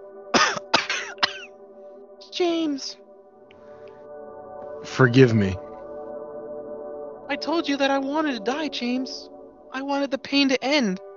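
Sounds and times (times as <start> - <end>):
woman coughing harshly: 0.4 - 1.5
speech: 2.3 - 3.0, 5.0 - 5.6, 7.3 - 11.0.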